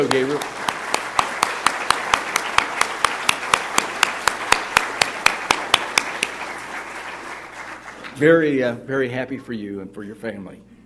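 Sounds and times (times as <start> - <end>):
speech: 0.0 - 0.6, 8.2 - 10.8
audience applause: 0.0 - 8.6.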